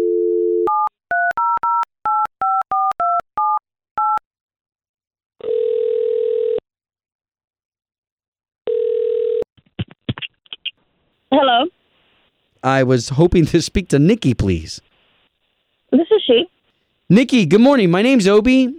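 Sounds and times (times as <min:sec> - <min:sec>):
telephone dial tone: 0:00.0 - 0:03.2, 0:05.4 - 0:06.6, 0:08.6 - 0:09.5
speech: 0:11.4 - 0:11.8, 0:12.6 - 0:14.9, 0:15.9 - 0:18.7.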